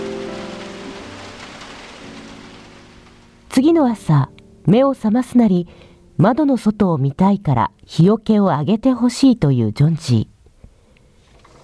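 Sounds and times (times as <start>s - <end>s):
cold rain mixed with sleet falling outside: 0.0s - 4.6s, 11.2s - 11.6s
speech: 3.6s - 10.3s.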